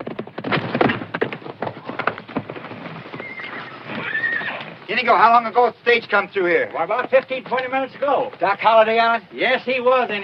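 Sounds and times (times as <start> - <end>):
horse galloping into a corral on hard ground: 0.0 - 10.2
horse whinnying: 3.0 - 4.8
speech: 4.9 - 10.2.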